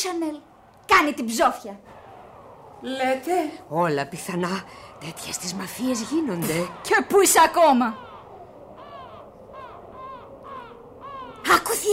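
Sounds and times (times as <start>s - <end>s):
speech: 0.0s - 2.0s, 2.8s - 8.1s, 11.8s - 11.9s
low constant rumble: 0.0s - 11.9s
crows cawing at night: 4.2s - 11.9s.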